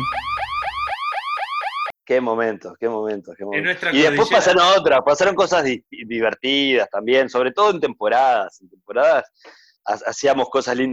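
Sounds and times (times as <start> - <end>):
electronic alarm whooping: 0.0 - 2.0
faint noise: 2.0 - 10.9
speech: 2.1 - 10.9.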